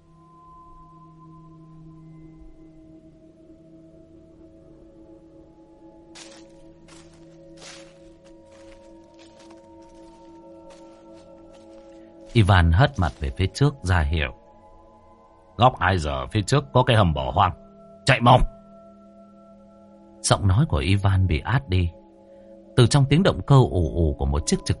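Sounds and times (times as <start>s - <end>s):
soft tonal drones: 0.0s - 20.2s
group's footsteps on dry leaves at night: 6.2s - 13.6s
speech: 12.4s - 14.4s, 15.6s - 18.5s, 20.3s - 22.0s, 22.8s - 24.7s.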